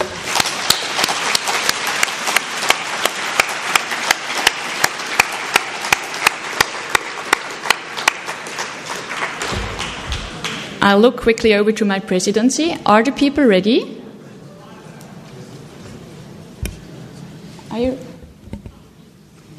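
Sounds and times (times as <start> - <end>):
large audience applauding: 0.0 - 10.8
speech: 10.9 - 14.0.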